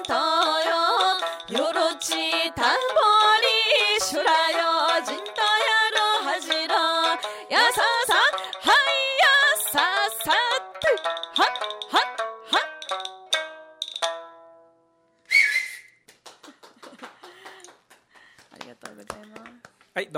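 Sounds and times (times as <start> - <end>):
speech: 0.0 - 0.2
plucked string notes at a live performance: 0.0 - 14.8
piercing finger whistle at a live performance: 15.3 - 16.1.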